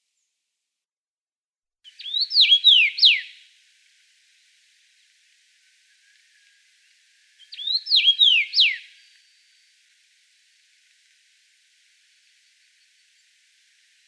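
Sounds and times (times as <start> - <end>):
common rosefinch singing a whistled phrase: 1.9 - 3.4, 7.4 - 8.9.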